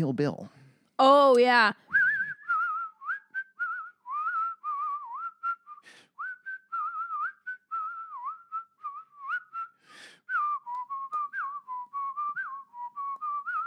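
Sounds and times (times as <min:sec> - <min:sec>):
speech: 0:00.0 - 0:01.9
person whistling a song: 0:01.9 - 0:13.6
brief breathy bursts: 0:09.8 - 0:10.3.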